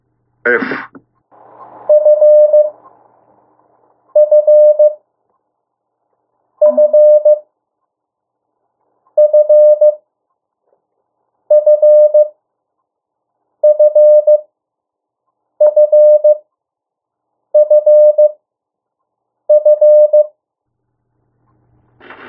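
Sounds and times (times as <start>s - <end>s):
speech: 0.4s - 1.0s
Morse code beeps for letter F: 1.9s - 2.7s, 4.2s - 5.0s, 6.6s - 7.4s, 9.2s - 10.0s, 11.5s - 12.3s, 13.6s - 14.4s, 15.6s - 16.4s, 17.6s - 18.4s, 19.5s - 20.3s.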